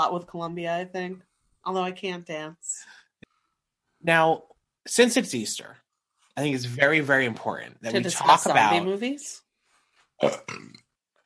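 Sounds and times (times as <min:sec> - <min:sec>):
speech: 0:00.0 - 0:03.0, 0:04.0 - 0:05.8, 0:06.4 - 0:09.4, 0:10.2 - 0:10.8
burp: 0:10.2 - 0:11.0.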